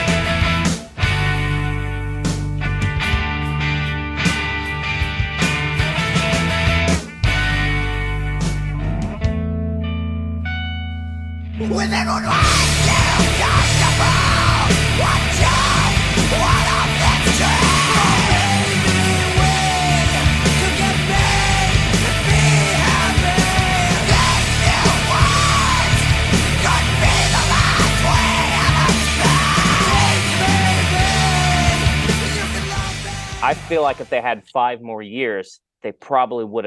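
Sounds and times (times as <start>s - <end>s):
sparse ringing guitar: 0.0s - 34.0s
loud distorted full-band rock playing: 0.0s - 34.3s
harsh screamed vocals: 11.6s - 33.6s
speech: 33.7s - 36.6s.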